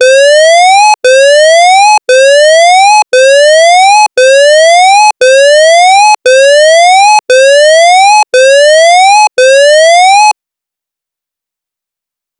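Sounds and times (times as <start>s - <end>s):
siren: 0.0s - 10.4s.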